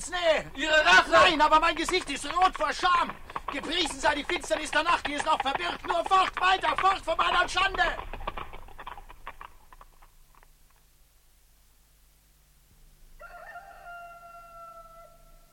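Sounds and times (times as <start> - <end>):
speech: 0.1 - 8.2
rooster crowing at night: 13.2 - 15.5.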